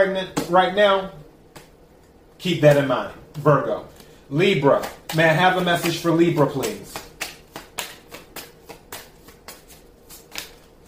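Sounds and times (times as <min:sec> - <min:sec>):
speech: 0:00.0 - 0:01.2, 0:02.4 - 0:07.0
tarot cards being shuffled and drawn by hand: 0:03.9 - 0:10.8.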